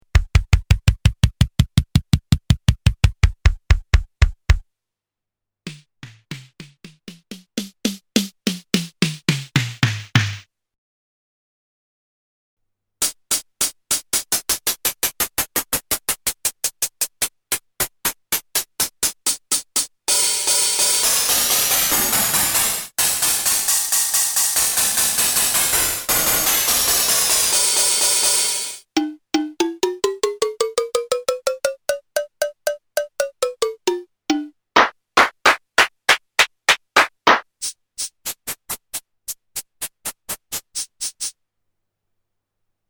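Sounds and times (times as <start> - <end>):
drum machine sounds being tuned: 0.0 - 4.6, 5.7 - 10.4, 20.1 - 37.5.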